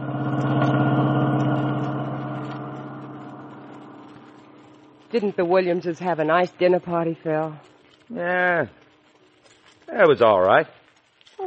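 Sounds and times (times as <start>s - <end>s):
car engine droning while driving home at night: 0.0s - 5.6s
speech: 5.1s - 8.8s, 9.9s - 10.8s.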